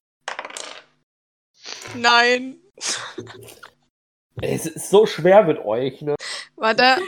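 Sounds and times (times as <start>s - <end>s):
dice rolled across a table for an investigation check in a game: 0.2s - 1.0s
speech: 1.9s - 3.8s, 4.4s - 7.0s.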